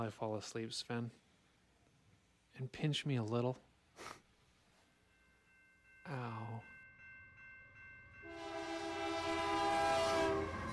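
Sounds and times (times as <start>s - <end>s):
speech: 0.0s - 1.2s, 2.6s - 4.2s, 6.1s - 6.7s
train rumbling: 7.4s - 10.7s
train horn blaring in a long steady blast: 8.2s - 10.7s.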